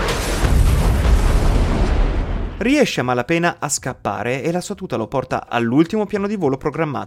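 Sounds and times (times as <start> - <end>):
explosive boom from a house being bombed: 0.0 - 3.0
speech: 2.6 - 7.0.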